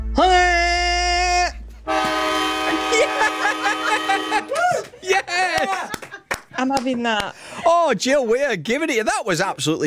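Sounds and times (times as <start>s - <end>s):
voice imitating a train horn with wavering tone: 0.2s - 4.5s
loud steady train horn blast: 1.9s - 4.6s
laughter: 2.1s - 7.8s
speech: 6.6s - 9.8s.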